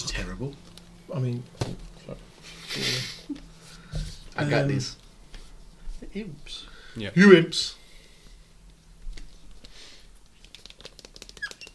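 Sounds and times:
speech: 0.4 - 2.2, 2.8 - 5.0, 6.1 - 7.8
squeaky pen running out scratching across paper: 10.6 - 11.7.

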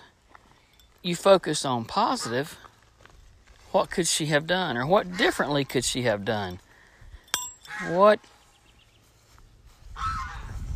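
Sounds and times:
speech: 1.0 - 2.7, 3.7 - 6.6, 7.7 - 8.4
goose honking: 4.9 - 5.5, 9.9 - 10.6.

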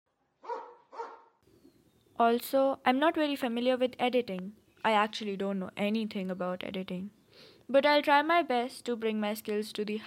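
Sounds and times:
dog barking short sharp woofs: 0.4 - 1.4
speech: 2.2 - 10.0.

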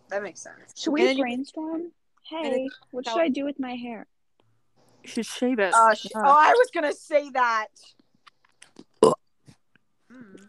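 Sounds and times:
speech: 0.1 - 4.1, 5.0 - 8.0, 9.0 - 9.2
burp: 8.8 - 9.3.

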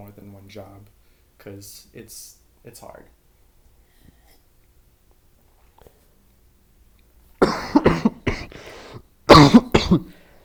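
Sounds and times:
speech: 0.1 - 3.2, 9.5 - 10.2
person coughing harshly: 7.4 - 10.2.

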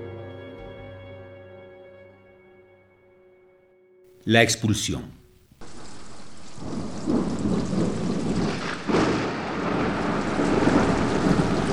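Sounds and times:
speech: 4.2 - 5.2
low rumbling: 5.2 - 11.7
violent downpour of rain and hail: 5.6 - 11.7.

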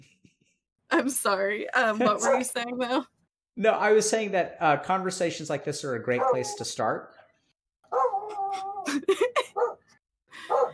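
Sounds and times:
speech: 0.9 - 7.2
female dog barking sharply: 2.2 - 2.5, 6.1 - 7.3, 7.9 - 8.5, 9.6 - 9.9, 10.5 - 10.7.

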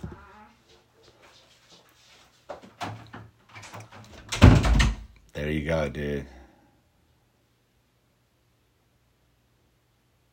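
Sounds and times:
soft shuffling: 0.1 - 2.6
door shutting with a loud thud: 2.8 - 5.1
speech: 5.4 - 6.4.

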